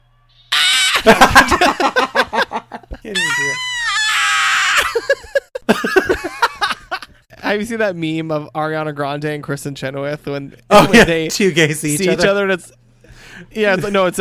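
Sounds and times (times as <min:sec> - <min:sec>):
person mimicking vampire shrieks with their voice: 0:00.5 - 0:01.1, 0:03.2 - 0:05.1
laughter: 0:00.9 - 0:03.6, 0:04.6 - 0:07.2
speech: 0:07.5 - 0:12.8, 0:13.4 - 0:14.2.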